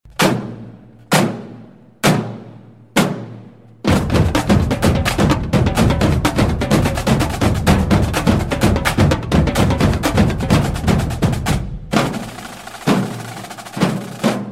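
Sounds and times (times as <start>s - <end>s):
drum beat: 3.0s - 14.5s.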